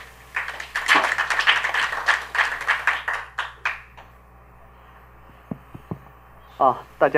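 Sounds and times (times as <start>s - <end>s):
room full of people applauding to welcome a speaker: 0.3s - 3.9s
speech: 6.6s - 7.1s.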